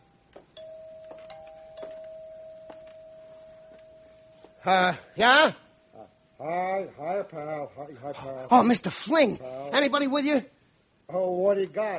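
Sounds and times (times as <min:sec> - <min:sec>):
doorbell chiming: 0:00.0 - 0:04.9
speech: 0:04.6 - 0:05.6, 0:06.4 - 0:11.9.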